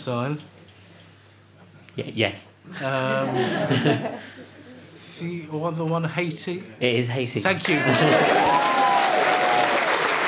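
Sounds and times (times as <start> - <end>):
speech: 0.0 - 0.6, 2.0 - 4.5, 5.2 - 8.9
laughter: 2.7 - 4.8, 7.6 - 9.0
audience applauding: 7.6 - 10.2.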